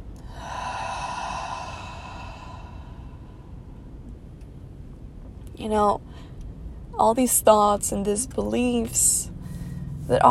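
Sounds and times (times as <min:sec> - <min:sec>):
deep breath out during a guided breathing exercise: 0:00.2 - 0:04.0
speech: 0:05.6 - 0:06.3, 0:07.0 - 0:09.3, 0:10.1 - 0:10.2.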